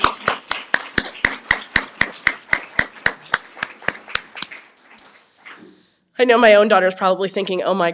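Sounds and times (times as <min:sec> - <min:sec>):
audience applause: 0:00.0 - 0:05.2
speech: 0:06.2 - 0:07.9.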